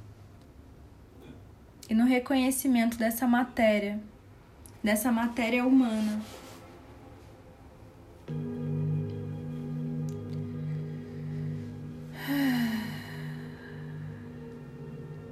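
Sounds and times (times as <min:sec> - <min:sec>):
speech: 0:01.9 - 0:04.1, 0:04.8 - 0:06.4
humming drone of sustained tones: 0:08.3 - 0:15.2
deep breath in: 0:10.5 - 0:15.2.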